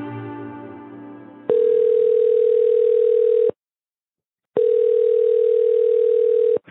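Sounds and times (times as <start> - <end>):
telephone outgoing call tone beeps: 1.5 - 3.6, 4.6 - 6.6.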